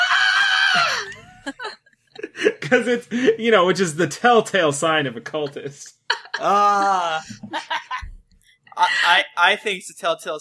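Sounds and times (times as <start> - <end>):
person screaming: 0.0 - 1.2, 6.4 - 7.3
speech: 2.7 - 7.7, 8.8 - 10.3.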